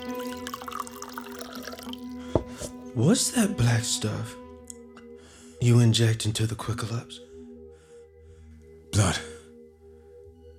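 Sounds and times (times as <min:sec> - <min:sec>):
liquid pouring into a glass: 0:00.0 - 0:02.8
speech: 0:03.0 - 0:04.4, 0:05.6 - 0:07.3, 0:08.9 - 0:09.3.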